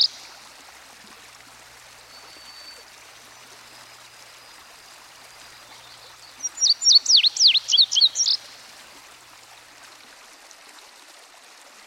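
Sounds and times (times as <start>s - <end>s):
Indigo bunting song of high paired notes: 0.0s - 0.6s, 1.6s - 8.8s
soft hissing background: 0.0s - 10.1s.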